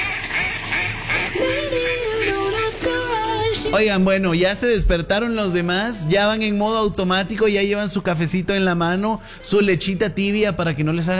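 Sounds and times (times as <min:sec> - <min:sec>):
duck quacking: 0:00.0 - 0:02.4
speech: 0:03.7 - 0:11.1.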